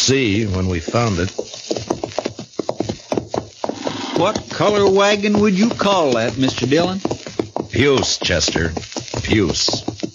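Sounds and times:
horses' hooves clip-clopping as riders ride out: 0:00.0 - 0:10.1
speech: 0:00.1 - 0:01.7, 0:04.2 - 0:09.9.

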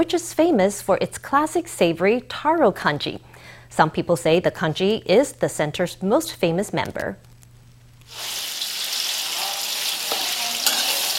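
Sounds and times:
speech: 0:00.0 - 0:07.3, 0:08.1 - 0:08.4
diced pork belly frying in a pan with mushrooms and shrimp: 0:08.1 - 0:11.1.

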